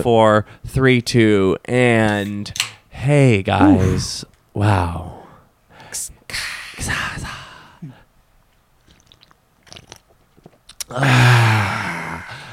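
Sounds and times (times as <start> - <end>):
speech: 0.0 - 5.2, 6.0 - 7.4, 10.9 - 11.7
person saying ahh: 3.6 - 4.2
several people sipping canned sparkling water: 8.8 - 10.9.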